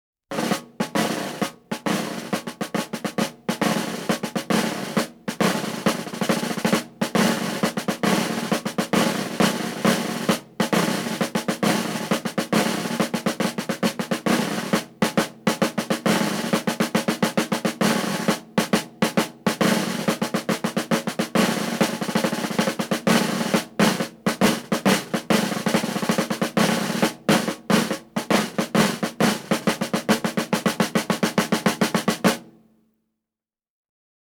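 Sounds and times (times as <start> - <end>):
military drum rhythms: 0.3 - 32.5.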